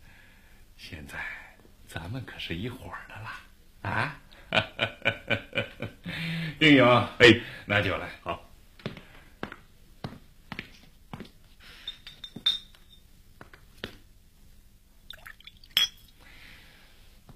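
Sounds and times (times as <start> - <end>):
speech: 0.9 - 5.4, 6.6 - 8.4
glasses clinking in a toast: 11.8 - 13.0, 15.1 - 16.2.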